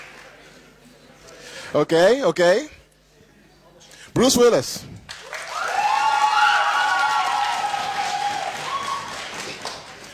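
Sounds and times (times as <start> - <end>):
speech: 1.7 - 2.8, 4.2 - 4.9
audience applause at a balloon debate: 5.1 - 10.1
loud cheering and whooping voices: 5.2 - 9.8.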